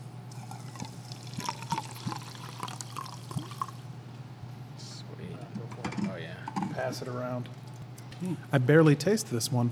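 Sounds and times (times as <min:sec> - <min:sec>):
water poured from a small bottle into a glass: 0:00.3 - 0:03.9
speech: 0:06.8 - 0:07.6, 0:08.2 - 0:09.6.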